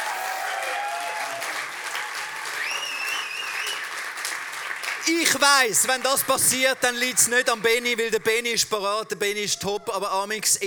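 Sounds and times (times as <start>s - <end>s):
audience applauding: 0.0s - 8.6s
faint whistles: 2.6s - 3.8s
speech: 5.0s - 10.6s.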